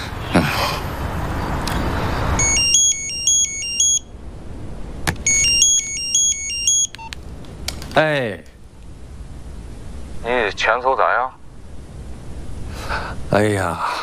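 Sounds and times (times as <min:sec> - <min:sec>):
noisy street or traffic rumble: 0:00.0 - 0:06.0, 0:06.6 - 0:14.0
public telephone ringing with a warbling electronic trill: 0:02.4 - 0:04.1, 0:05.3 - 0:07.0
speech: 0:08.0 - 0:08.5, 0:10.2 - 0:11.4, 0:13.3 - 0:14.0.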